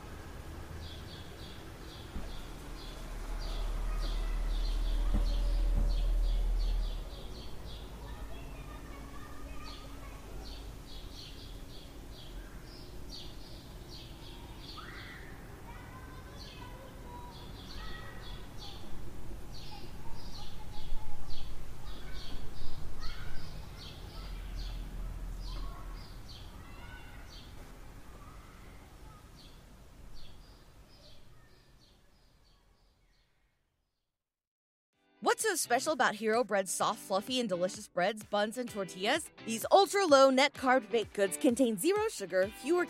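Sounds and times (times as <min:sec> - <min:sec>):
many birds chirping outdoors: 0:00.7 - 0:33.5
low rumble: 0:02.1 - 0:08.3
speech: 0:35.4 - 0:42.8.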